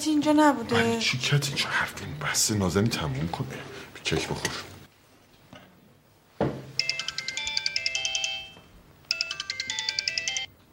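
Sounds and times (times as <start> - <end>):
speech: 0.0 - 4.7
loud electronic phone ringtone: 6.8 - 10.5.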